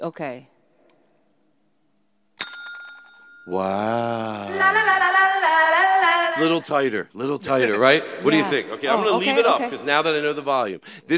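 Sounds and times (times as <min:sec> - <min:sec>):
speech: 0:00.0 - 0:00.5, 0:03.4 - 0:11.1
single bright metallic bell strike: 0:02.4 - 0:03.6.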